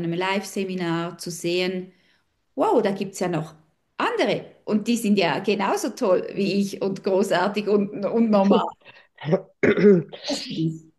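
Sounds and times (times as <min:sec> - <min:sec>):
speech: 0:00.0 - 0:02.0, 0:02.6 - 0:10.9
throat clearing from a speaker with a cold: 0:08.6 - 0:10.8.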